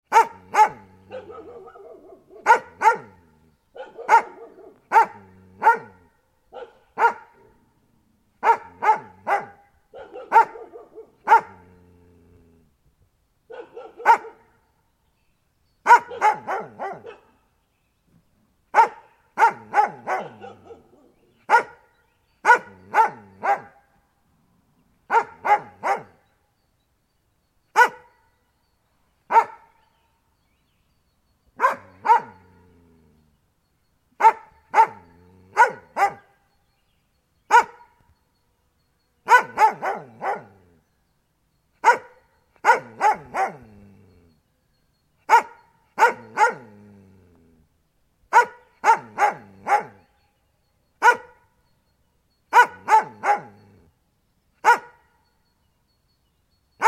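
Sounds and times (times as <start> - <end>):
dog barking constantly: 0.1 - 7.6, 8.4 - 11.7, 13.5 - 14.6, 15.9 - 17.4, 18.7 - 23.8, 25.1 - 26.2, 27.8 - 28.2, 29.3 - 29.7, 31.6 - 32.5, 34.2 - 36.4, 37.5 - 38.0, 39.2 - 40.6, 41.8 - 43.8, 45.3 - 46.8, 48.3 - 50.0, 51.0 - 51.5, 52.5 - 53.6, 54.6 - 55.1.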